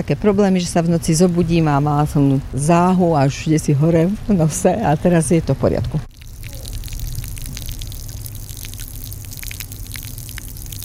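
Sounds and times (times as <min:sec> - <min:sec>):
speech: 0:00.0 - 0:06.1
spring water at a spa in Slovakia trickling and splashing into a container: 0:06.1 - 0:10.8.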